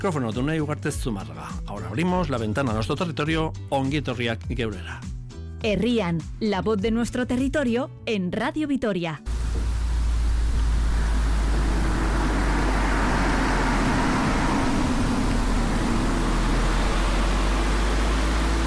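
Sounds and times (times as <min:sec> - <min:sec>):
speech: 0:00.0 - 0:09.6
road traffic at the entrance to the village of Corres in Álava: 0:09.3 - 0:18.6
vehicle passing at village entrance: 0:09.3 - 0:18.6.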